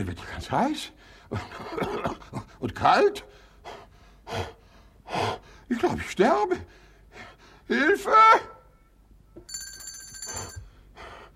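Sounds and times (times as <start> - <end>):
speech: 0.0 - 8.5
bell ringing to summon a maid: 9.4 - 10.6.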